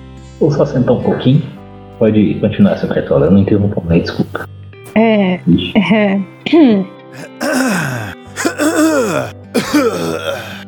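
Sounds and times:
speech: 0.4s - 8.0s, 9.0s - 10.6s
person clearing throat after drinking coffee: 7.2s - 10.6s.

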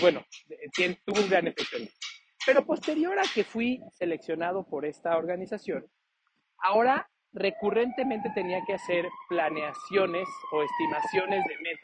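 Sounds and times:
speech: 0.0s - 6.0s, 6.6s - 11.8s
ambulance siren wailing outside: 7.4s - 11.8s.

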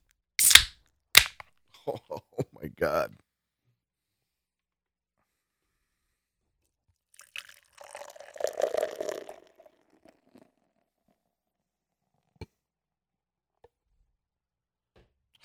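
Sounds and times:
beer with sediment fizzing as poured from a bottle: 0.4s - 1.3s, 7.2s - 9.7s
speech: 1.9s - 2.2s, 2.8s - 3.2s.

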